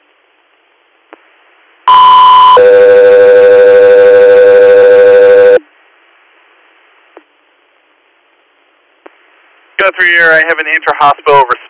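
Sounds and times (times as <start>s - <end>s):
radio dispatch alert tones for an emergency medical call: 1.9s - 5.6s
speech: 9.9s - 11.6s.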